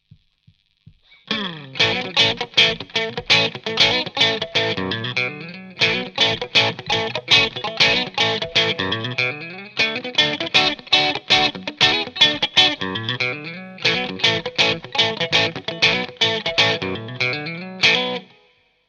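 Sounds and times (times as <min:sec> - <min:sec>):
clean funk guitar: 0:00.7 - 0:18.4.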